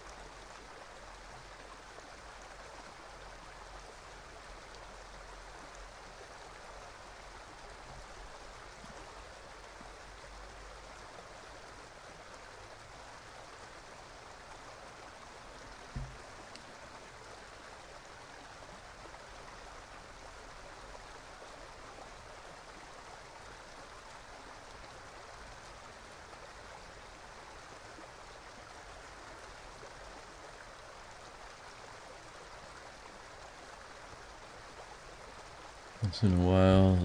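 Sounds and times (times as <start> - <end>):
water flowing in a stream: 0.0 - 37.0
soft knock: 15.9 - 16.2
speech: 36.1 - 37.0.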